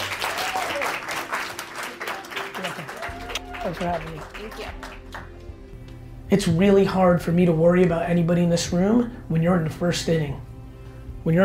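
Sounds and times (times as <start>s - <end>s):
crowd applauding: 0.0s - 5.5s
speech: 3.6s - 4.9s, 6.3s - 10.5s, 11.2s - 11.4s.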